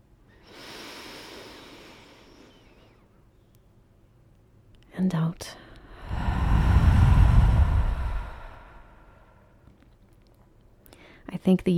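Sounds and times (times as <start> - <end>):
long deep inhale: 0.3 - 3.1, 5.6 - 9.6
speech: 5.0 - 5.6, 11.4 - 11.7.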